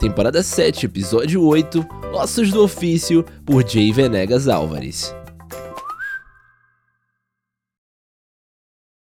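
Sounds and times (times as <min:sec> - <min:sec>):
speech: 0:00.0 - 0:05.2
person whistling a tune: 0:05.6 - 0:07.1.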